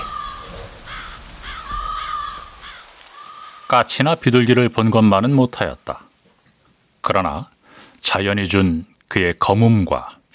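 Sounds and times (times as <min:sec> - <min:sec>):
crows cawing from a dead fir branch: 0:00.0 - 0:03.9
speech: 0:03.7 - 0:06.1, 0:07.0 - 0:10.2.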